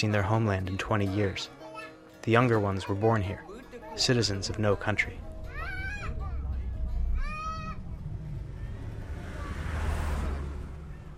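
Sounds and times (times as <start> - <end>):
speech: 0.0 - 1.6, 2.2 - 5.3
truck driving along a road down the Thailand-Burma border: 3.5 - 11.1.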